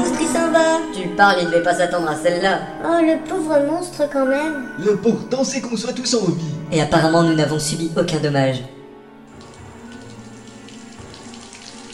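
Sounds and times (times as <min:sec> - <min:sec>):
speech: 0:00.5 - 0:08.8
water leaking and rising: 0:09.3 - 0:11.9.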